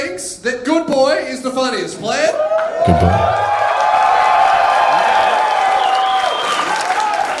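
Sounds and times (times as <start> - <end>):
speech: 0.4 - 3.4
shouts and whoops: 2.3 - 7.3
crowd applauding in a vote: 2.6 - 7.3.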